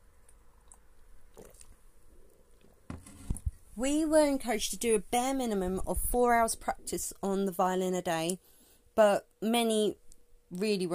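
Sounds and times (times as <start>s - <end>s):
person sipping coffee: 0.3s - 3.5s
cup set down: 2.9s - 3.5s
speech: 3.8s - 10.9s.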